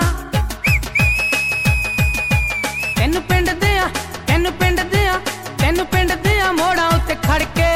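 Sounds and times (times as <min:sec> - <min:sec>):
rhythmic music with a steady thumping beat: 0:00.0 - 0:07.7
boys whistling: 0:00.6 - 0:03.0.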